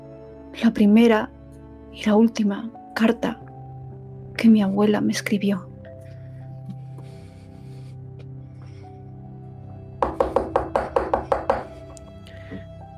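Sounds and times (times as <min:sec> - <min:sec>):
speech: 0:00.6 - 0:01.4, 0:02.0 - 0:03.4, 0:04.4 - 0:05.7
knocking on a door: 0:10.0 - 0:11.8.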